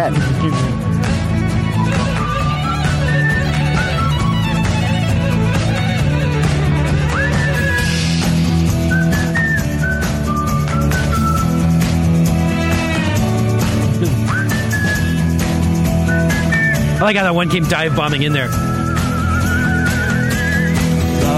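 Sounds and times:
speech: 0.0s - 0.9s, 17.0s - 18.7s
busy, loud instrumental backing: 0.0s - 21.3s
bright whistled melody: 1.8s - 5.2s, 6.8s - 13.0s, 14.0s - 21.3s.

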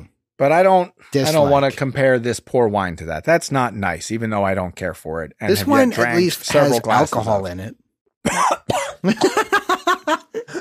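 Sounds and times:
speech: 0.4s - 9.7s
person coughing after inhaling a sip of wine: 8.2s - 9.6s
laughter: 9.0s - 10.5s.

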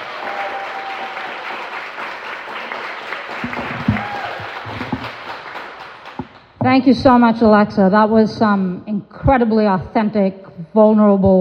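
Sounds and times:
sustained applause from a sizable audience: 0.0s - 6.4s
speech: 6.6s - 11.4s.

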